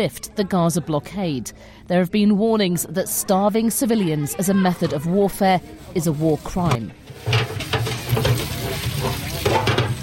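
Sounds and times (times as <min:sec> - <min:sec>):
speech: 0:00.0 - 0:07.6
scrubbing of huge cooking pots: 0:04.8 - 0:10.0
running and splashing water washing huge cooking pots in a Gaza food kitchen: 0:07.1 - 0:10.0.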